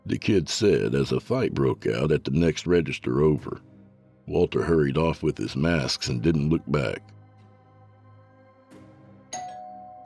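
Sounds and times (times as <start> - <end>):
speech: 0.1 - 3.7, 4.3 - 7.2
doorbell two-note ding-dong chime: 9.3 - 10.0.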